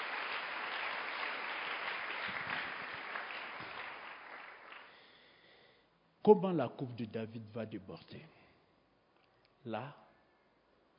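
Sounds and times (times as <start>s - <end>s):
congregation applauding and cheering at a church worship service: 0.0s - 5.0s
speech: 6.2s - 8.4s, 9.6s - 10.0s.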